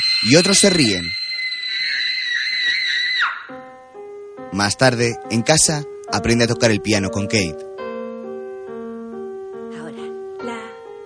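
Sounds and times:
speech: 0:00.2 - 0:01.2, 0:04.6 - 0:07.7
girl screaming hysterically: 0:01.3 - 0:03.6.

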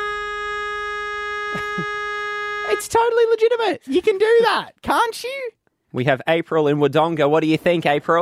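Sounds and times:
car horn honking at a green traffic light: 0:00.0 - 0:03.1
speech: 0:01.5 - 0:02.0, 0:02.7 - 0:08.2.

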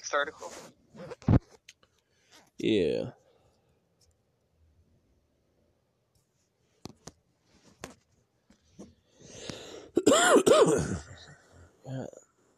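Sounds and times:
speech: 0:00.1 - 0:01.5, 0:02.6 - 0:03.2, 0:10.2 - 0:11.1, 0:11.9 - 0:12.2
person with a chest cold coughing: 0:09.9 - 0:11.3.

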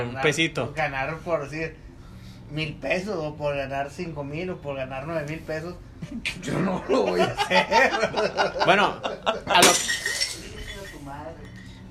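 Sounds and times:
speech: 0:00.0 - 0:01.8, 0:02.5 - 0:10.0
laughter: 0:06.0 - 0:09.7
drinking glass falling and clinking: 0:09.5 - 0:11.7.

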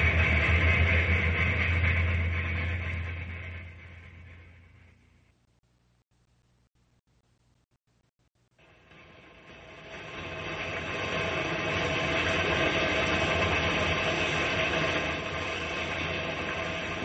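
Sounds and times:
old train engine chugging and rattling: 0:00.0 - 0:05.4, 0:08.8 - 0:17.0.

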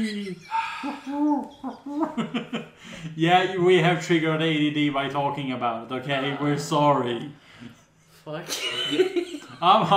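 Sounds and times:
person imitating owl hoots: 0:00.0 - 0:01.9
speech: 0:00.0 - 0:07.4, 0:08.2 - 0:09.9
laughter: 0:00.6 - 0:03.1.

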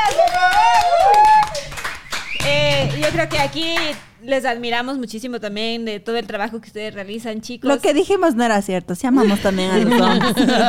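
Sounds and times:
loud cheering voices and whoops: 0:00.0 - 0:01.8
small group applauding with quick sharp claps: 0:00.0 - 0:04.1
speech: 0:03.2 - 0:10.6
laughter: 0:09.2 - 0:10.6.

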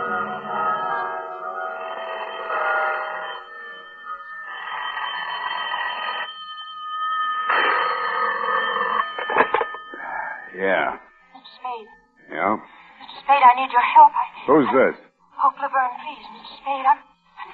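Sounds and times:
telephone bell ringing: 0:00.0 - 0:12.2
speech: 0:10.6 - 0:11.0, 0:11.8 - 0:12.7, 0:13.3 - 0:15.0, 0:15.6 - 0:17.1.

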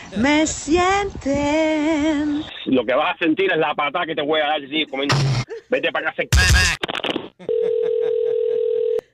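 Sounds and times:
speech: 0:00.1 - 0:06.8
telephone line tone on incoming call: 0:07.5 - 0:09.1.

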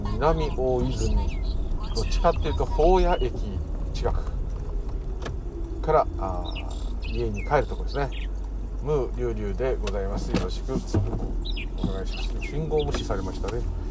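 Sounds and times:
birds chirping outdoors in Minami-Oizumi, Nerima ward, in the evening: 0:00.0 - 0:13.8
traffic noise: 0:00.0 - 0:13.8
speech: 0:00.2 - 0:04.3, 0:05.8 - 0:13.8.

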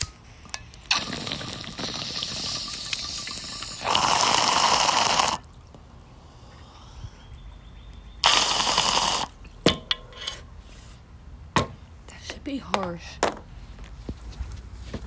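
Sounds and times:
water bubbling and gurgling through a bong during a hit: 0:00.8 - 0:05.8, 0:08.1 - 0:09.6
speech: 0:12.5 - 0:13.3.

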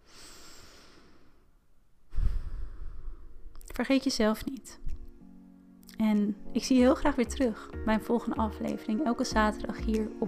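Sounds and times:
deliberate deep breath during a guided breathing moment: 0:00.0 - 0:03.5
speech: 0:03.8 - 0:04.8, 0:06.0 - 0:10.2.

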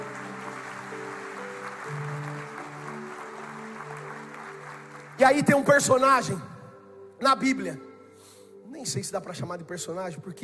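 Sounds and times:
crowd applauding in praise to God during an evening sermon: 0:00.0 - 0:06.0
speech: 0:05.2 - 0:06.5, 0:07.2 - 0:07.9, 0:08.8 - 0:10.4.

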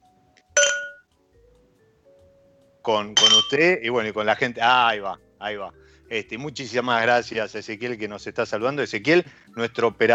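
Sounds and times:
glasses clinking in a birthday toast: 0:00.6 - 0:01.0, 0:03.2 - 0:03.6
speech: 0:02.8 - 0:10.1.

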